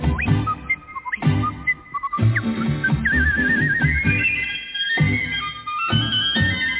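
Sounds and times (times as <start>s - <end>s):
bright whistled yodel-like melody: 0.0s - 6.7s
instrumental music with a rhythmic beat: 0.0s - 6.7s.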